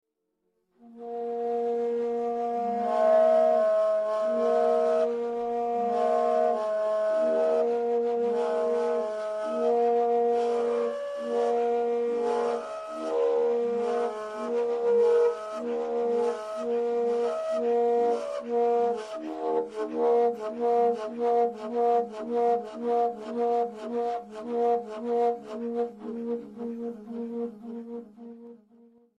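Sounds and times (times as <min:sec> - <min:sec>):
Sepik flutes: 0:00.8 - 0:29.1.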